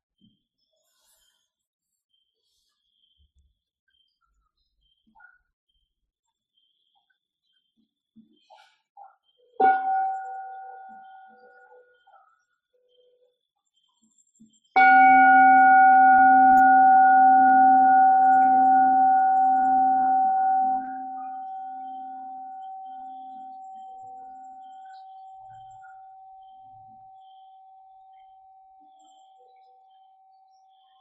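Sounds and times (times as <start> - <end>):
Buddhist meditation bell struck by a nun: 9.6 - 11.6, 14.8 - 28.3.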